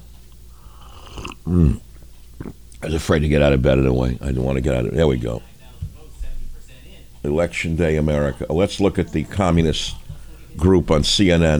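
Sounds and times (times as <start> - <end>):
sipping coffee: 0.6 - 1.8
throaty gulp: 0.7 - 2.6
speech: 1.5 - 5.5, 7.2 - 10.0, 10.6 - 11.5.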